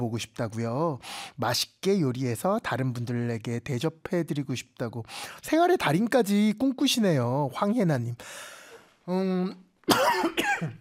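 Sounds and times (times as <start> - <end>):
speech: 0.0 - 10.7
person coughing: 9.9 - 10.7.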